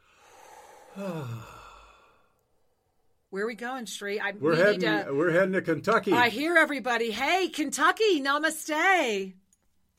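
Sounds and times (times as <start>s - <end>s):
deep breath let out as a voiced sigh: 0.0s - 3.2s
speech: 1.0s - 1.6s, 3.3s - 9.4s.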